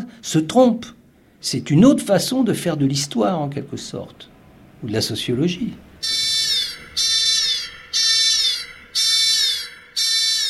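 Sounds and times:
speech: 0.2 - 6.1
intrusion alert alarm tone: 6.0 - 10.4.

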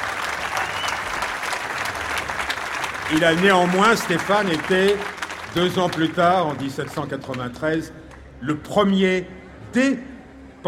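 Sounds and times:
audience applause: 0.0 - 7.5
speech: 3.1 - 10.6.

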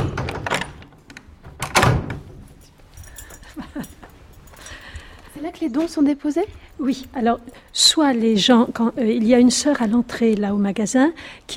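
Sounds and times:
old cloister door latch rattling: 0.0 - 2.4
old heavy cloister door of an old house thumping: 1.4 - 2.4
speech: 5.5 - 11.5.

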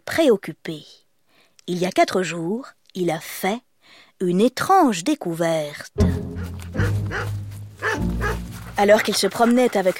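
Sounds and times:
speech: 0.2 - 1.0, 1.6 - 6.2, 8.0 - 9.9
dog barking in short deep woofs: 6.4 - 8.5.

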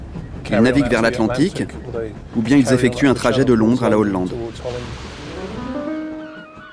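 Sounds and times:
speech: 0.5 - 5.1
big sea waves crashing on shore: 2.8 - 6.7.

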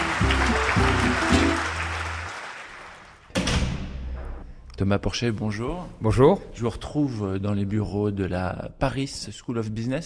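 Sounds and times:
audience applause: 0.0 - 3.3
speech: 4.8 - 10.0.

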